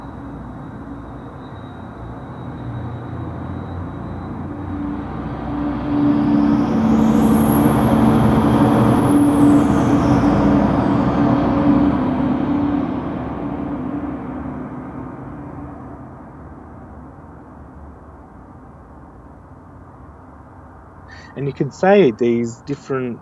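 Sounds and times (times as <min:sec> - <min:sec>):
faint high whine: 0:00.0 - 0:19.5, 0:21.0 - 0:23.2
road traffic rumbling with passing cars: 0:00.0 - 0:23.2
distant crowd: 0:21.1 - 0:23.2
speech: 0:21.5 - 0:23.2.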